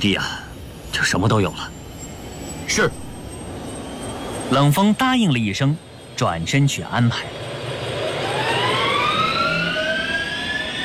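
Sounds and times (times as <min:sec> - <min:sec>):
speech: 0:00.0 - 0:00.4, 0:01.0 - 0:01.8, 0:02.7 - 0:03.0, 0:04.5 - 0:07.4
transport plane engine starting up at an airfield: 0:07.5 - 0:10.8.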